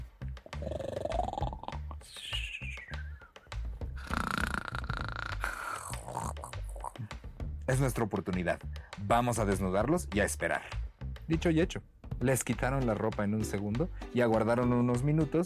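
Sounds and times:
men lying deeply asleep on the ground snoring loudly: 0.5 - 2.0, 3.9 - 7.1
speech: 7.7 - 15.4.

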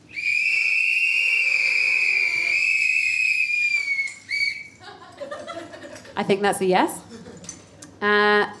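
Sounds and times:
audience whistling in answer to a question: 0.0 - 4.8
laughter: 4.8 - 6.2, 7.0 - 7.6
speech: 6.2 - 7.0.

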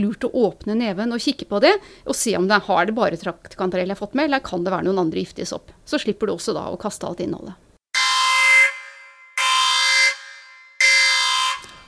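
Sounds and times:
speech: 0.0 - 7.6
alarm horn blasts: 7.9 - 11.8.

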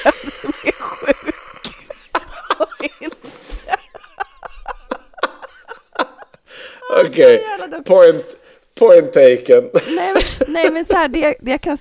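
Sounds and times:
sick person coughing: 0.0 - 2.1
laughter: 0.0 - 7.3, 9.8 - 11.2
speech: 7.0 - 11.7.

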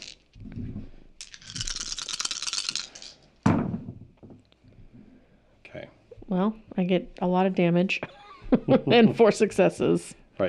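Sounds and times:
dice rattling as they are shaken: 0.0 - 0.4, 1.2 - 3.3
speech: 5.8 - 10.4
laughter: 8.0 - 9.5.

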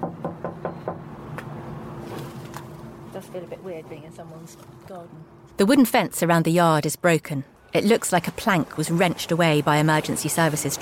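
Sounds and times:
knocking on the door of a maisonette in a low-rise block: 0.0 - 1.0
steady low hum of noise: 0.9 - 9.1
speech: 3.2 - 10.8.

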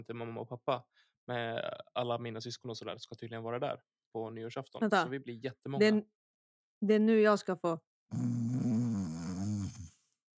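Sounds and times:
speech: 0.0 - 6.2, 6.8 - 8.8
imitated snore: 8.1 - 10.1.

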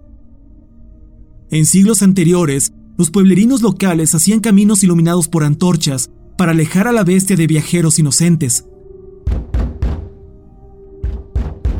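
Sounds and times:
speech: 1.5 - 8.8
heavy booming knocks on a door: 9.2 - 10.2, 11.0 - 11.7.

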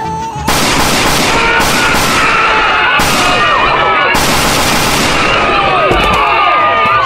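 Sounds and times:
gunfire bursts in a police shooting scene: 0.5 - 6.6.

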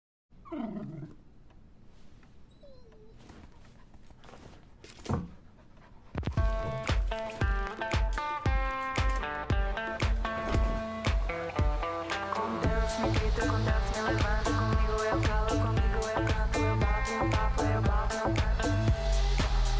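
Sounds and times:
rustling noise: 1.1 - 11.1
dog panting in quick breaths: 2.6 - 7.6
loud bright music with a steady beat: 6.3 - 19.7.

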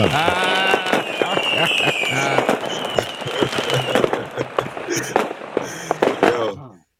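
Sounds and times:
speech: 0.0 - 0.4
fireworks exploding outside in pops and crackles: 0.0 - 6.5
laughter: 0.0 - 6.7.

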